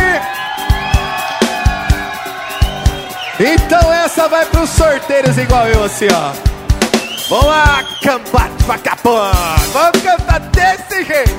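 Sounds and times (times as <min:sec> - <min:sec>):
crowd of singles shouting and cheering with whoops: 0:00.0 - 0:10.0
live music: 0:00.0 - 0:11.3
speech: 0:03.4 - 0:06.5, 0:07.3 - 0:11.3
steady thumping drum beat: 0:04.7 - 0:07.8.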